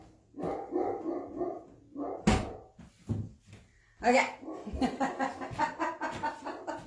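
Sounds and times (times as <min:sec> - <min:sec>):
dog barking and yelping excitedly: 0:00.3 - 0:02.8, 0:04.4 - 0:05.1
speech: 0:04.0 - 0:05.7
laughter: 0:04.7 - 0:06.8.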